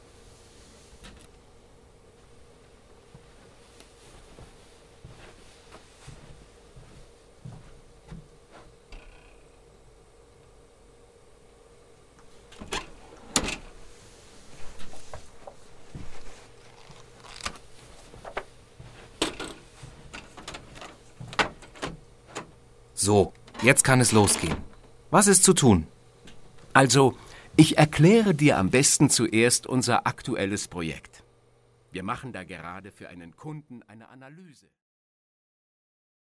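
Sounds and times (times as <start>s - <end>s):
steady hum: 0.0s - 34.6s
speech: 23.1s - 26.0s, 26.8s - 31.1s, 31.9s - 34.8s
cabinet door opening: 23.5s - 24.8s.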